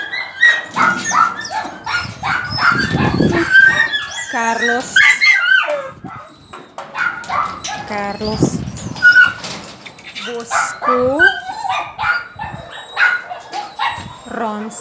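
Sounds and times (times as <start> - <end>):
female dog yipping, barking and whimpering: 0.0 - 14.7
speech: 4.4 - 5.1, 7.9 - 8.6, 10.3 - 11.4, 14.4 - 14.7.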